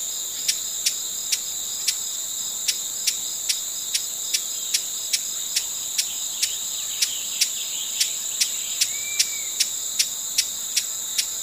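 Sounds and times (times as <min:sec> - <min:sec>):
high-pitched insect hum: 0:00.0 - 0:11.4
broad-billed hummingbird dry clicky chips: 0:04.7 - 0:10.8.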